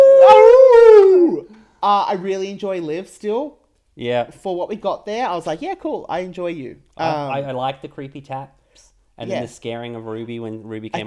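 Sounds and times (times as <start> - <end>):
drawn-out howl: 0.0 - 1.4
speech: 1.8 - 11.0.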